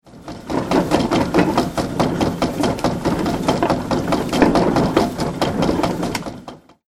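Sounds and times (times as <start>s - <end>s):
mill grinding: 0.0s - 6.8s.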